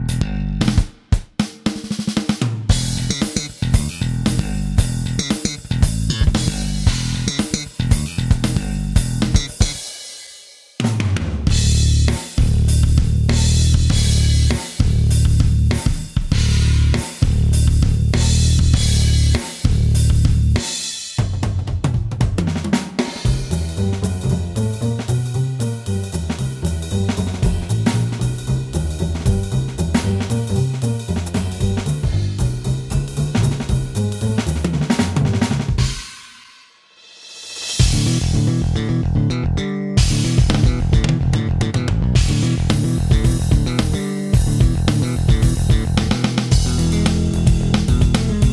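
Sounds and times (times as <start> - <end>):
BOSS Dr. Rythm DR-880 drum machine: 0.1 - 10.0, 10.8 - 36.5, 37.4 - 39.4, 40.0 - 48.5.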